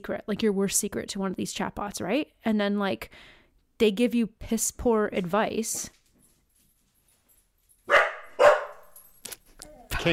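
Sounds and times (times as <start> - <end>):
speech: 0.0 - 6.0
puppy barking: 7.9 - 9.0.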